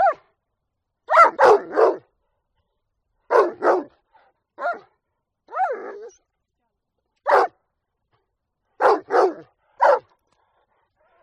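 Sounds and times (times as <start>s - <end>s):
dog barking: 0.0s - 0.3s, 1.1s - 2.1s, 3.3s - 4.0s, 4.6s - 4.9s, 5.5s - 6.1s, 7.2s - 7.6s, 8.8s - 10.1s.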